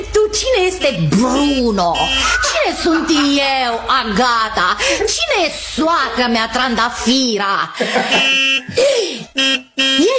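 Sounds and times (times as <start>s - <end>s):
car horn honking: 0.5s - 4.1s, 7.8s - 10.1s
speech: 0.6s - 9.6s
laughter: 2.1s - 6.3s, 7.6s - 9.2s.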